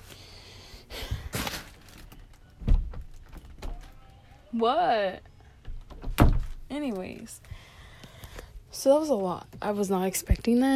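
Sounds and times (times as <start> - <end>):
door shutting with a dull thud: 2.6 - 3.8, 5.7 - 6.6
speech: 4.6 - 5.3, 6.7 - 7.5, 8.8 - 10.7.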